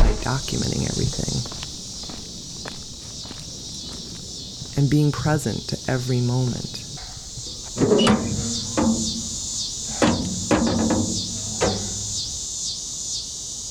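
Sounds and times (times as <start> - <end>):
knocks and thumps: 0.0 - 0.7, 7.4 - 12.4
cicadas buzzing outdoors: 0.0 - 13.6
speech: 0.2 - 1.6, 4.8 - 6.8.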